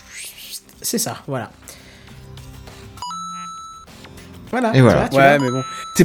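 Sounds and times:
speech: 0:00.8 - 0:01.7, 0:04.6 - 0:06.0
phone email notification chime: 0:03.0 - 0:03.9, 0:05.1 - 0:06.0.

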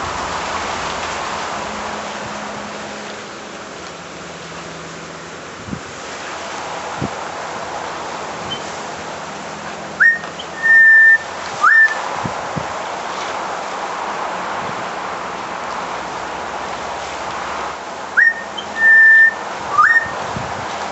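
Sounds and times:
steady background hiss: 0:00.0 - 0:20.9
female butcherbird whistling calls: 0:10.0 - 0:12.0, 0:18.2 - 0:20.2.

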